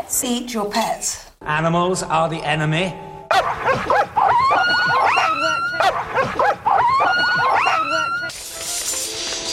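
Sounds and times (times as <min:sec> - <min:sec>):
speech: 0:00.1 - 0:08.7
several dogs barking and yipping: 0:03.3 - 0:08.3.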